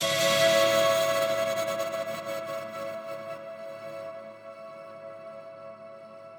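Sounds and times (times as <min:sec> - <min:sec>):
pretty musical hit effect in A major: 0:00.0 - 0:02.9.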